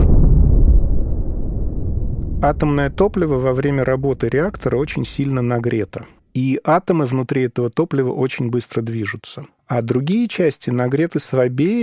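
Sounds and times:
explosion: 0.0 - 6.2
speech: 2.4 - 11.8.

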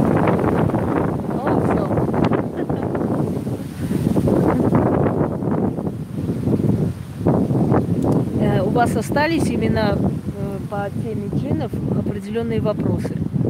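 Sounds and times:
blustery wind buffeting the microphone: 0.0 - 13.4
speech: 8.8 - 13.2.

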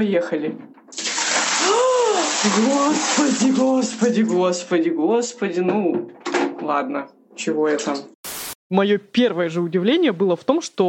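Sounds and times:
speech: 0.0 - 0.8, 1.7 - 8.1, 8.7 - 10.8
icy water gushing into a bathtub over feet: 0.9 - 4.7
person exclaiming: 1.6 - 3.0.

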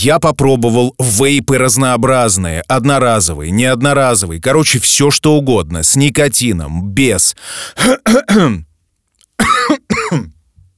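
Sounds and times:
speech: 0.0 - 8.7, 9.4 - 10.4
person coughing harshly: 7.8 - 8.7, 9.4 - 10.4
throat clearing: 7.8 - 8.7, 9.4 - 10.4.

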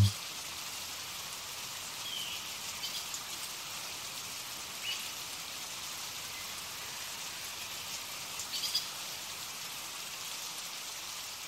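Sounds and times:
steady rain falling in a forest: 0.0 - 11.4.

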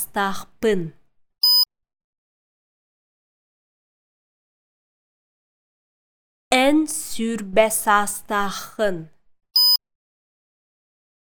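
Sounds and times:
speech: 0.1 - 1.0, 6.5 - 9.1
short electronic beep: 1.4 - 1.7, 9.6 - 9.8.

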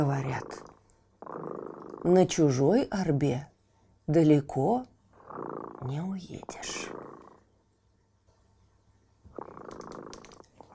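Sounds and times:
cat purring: 0.0 - 2.7, 5.1 - 7.6, 9.2 - 10.7
speech: 0.0 - 3.5, 4.1 - 4.9, 5.8 - 7.1.

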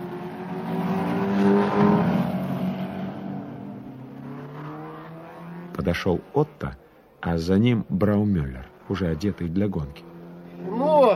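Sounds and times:
racing car engines roaring on a track: 0.0 - 11.1
speech: 5.9 - 11.1.

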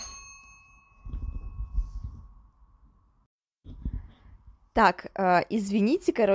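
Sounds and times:
doorbell chiming: 0.0 - 3.1
speech: 4.8 - 6.3.

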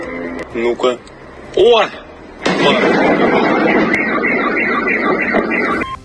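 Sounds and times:
speech: 0.5 - 4.0
explosion blast: 2.4 - 5.9.

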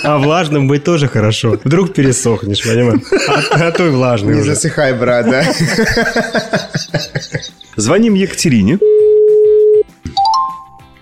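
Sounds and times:
laughter: 0.0 - 8.2
speech: 0.0 - 9.0
light music: 0.0 - 11.0
steady held tone: 8.8 - 10.8
bright rising bell-like magical chime notes: 10.2 - 10.8.

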